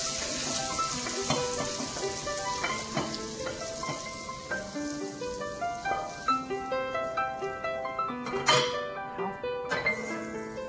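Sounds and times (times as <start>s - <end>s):
Hakka stir-fry sizzling in a wok: 0.0s - 8.8s, 9.7s - 10.6s
music: 0.0s - 10.6s
scraping and clinking from stirring in a wok: 0.4s - 4.1s.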